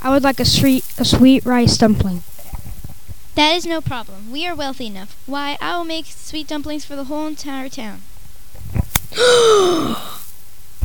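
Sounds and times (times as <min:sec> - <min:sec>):
speech: 0:00.1 - 0:02.3, 0:03.4 - 0:08.1, 0:08.7 - 0:10.2
person gasping in horror: 0:09.1 - 0:10.3.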